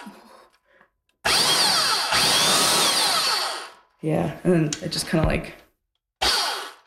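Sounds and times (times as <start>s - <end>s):
loud power sander from a community tool library in Dawson City, Yukon: 1.3s - 3.8s, 6.3s - 6.8s
speech: 4.1s - 5.6s.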